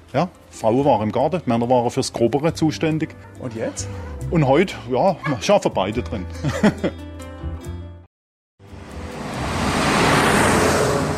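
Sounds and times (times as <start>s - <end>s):
speech: 0.1s - 7.1s
laughter: 6.3s - 7.0s
road traffic roar on a busy village road: 8.6s - 11.1s.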